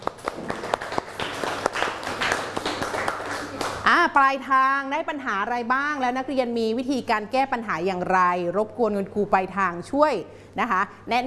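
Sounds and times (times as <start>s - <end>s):
classroom applause for a classmate: 0.0s - 3.8s
speech: 4.1s - 11.2s.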